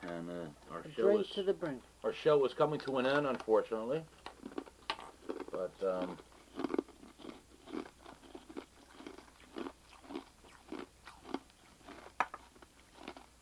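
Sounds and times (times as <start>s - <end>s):
speech: 0.2s - 4.2s, 5.6s - 6.7s
person chewing ice: 4.2s - 13.4s.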